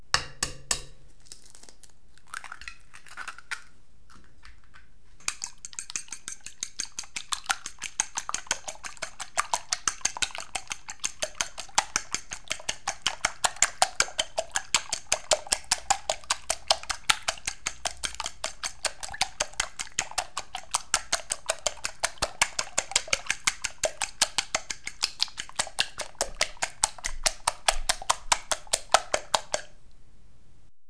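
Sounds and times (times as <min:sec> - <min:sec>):
egg: 0:00.2 - 0:29.8.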